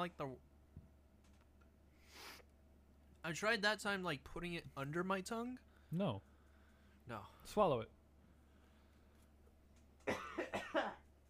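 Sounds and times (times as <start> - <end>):
speech: 0.0 - 0.5, 3.2 - 6.3, 7.1 - 8.0
person coughing harshly: 10.0 - 11.1.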